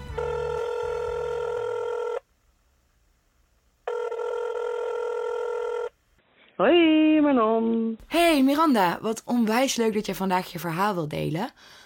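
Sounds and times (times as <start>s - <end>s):
ringback tone of an outgoing telephone call: 0.1s - 2.2s, 3.9s - 5.9s
speech: 6.6s - 11.8s.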